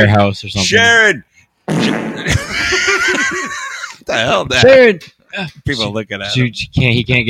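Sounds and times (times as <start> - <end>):
speech: 0.0 - 3.4, 4.1 - 7.2
loud drawn-out squeaky fart: 1.7 - 2.4
laughter: 2.1 - 4.1.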